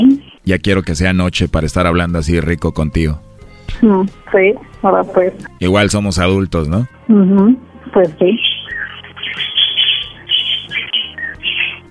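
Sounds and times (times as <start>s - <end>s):
speech: 0.0s - 8.5s
chorus of small birds chirping and twittering: 8.2s - 11.8s.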